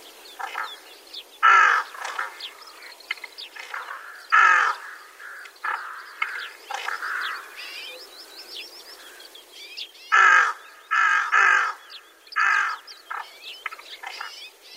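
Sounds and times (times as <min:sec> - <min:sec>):
flock of rooks calling in winter rice paddies in Gunma Prefecture, Japan: 0:01.4 - 0:02.4, 0:03.7 - 0:07.8, 0:09.0 - 0:09.4, 0:10.1 - 0:12.9.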